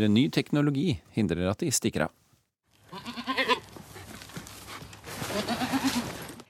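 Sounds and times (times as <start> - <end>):
speech: 0.0 - 2.2
outdoor noise: 0.0 - 6.4
goats clearing scrub at a building site bleating: 2.9 - 3.7, 5.3 - 6.2.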